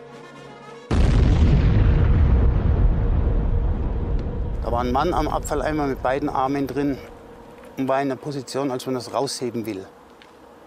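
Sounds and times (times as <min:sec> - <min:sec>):
bomb explosion: 0:00.9 - 0:06.8
speech: 0:04.7 - 0:07.1, 0:07.8 - 0:10.0.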